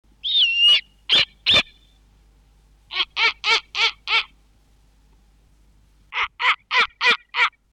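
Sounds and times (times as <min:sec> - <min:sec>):
Snowy Owl calls in summer: 0:00.2 - 0:02.0, 0:02.9 - 0:04.4, 0:06.1 - 0:07.6.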